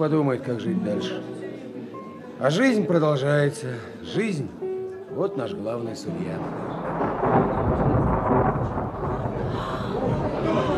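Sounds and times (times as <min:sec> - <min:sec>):
speech: 0:00.0 - 0:01.4, 0:02.4 - 0:04.6, 0:05.2 - 0:07.7
thunder rumbling before rain: 0:06.4 - 0:10.7.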